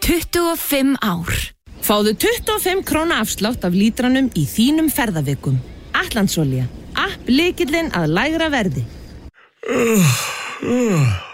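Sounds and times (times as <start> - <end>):
speech: 0.1 - 9.0, 9.6 - 11.3
person yawning while driving a car: 9.4 - 11.3.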